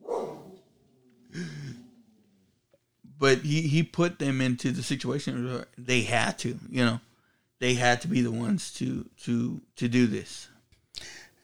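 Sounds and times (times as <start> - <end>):
dog barking: 0.0 - 0.7
speech: 3.2 - 11.4.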